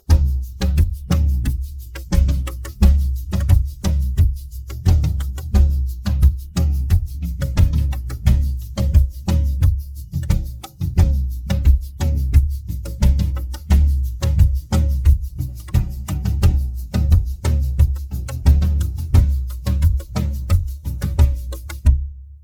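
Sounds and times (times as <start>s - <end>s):
slow jungle drum pattern: 0.0s - 22.4s.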